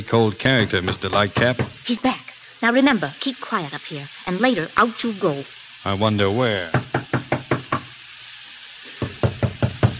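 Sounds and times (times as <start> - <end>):
speech: 0.0 - 6.8
firm loud knocking on a locked door: 0.6 - 1.8, 6.7 - 7.9, 9.0 - 9.9.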